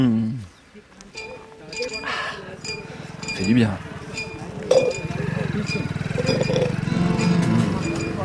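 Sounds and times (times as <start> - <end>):
faint voices: 0.0 - 8.2
motorcycle engine puttering carrying a rider along a small canal on a hot day: 1.2 - 8.2
speech: 3.4 - 3.9.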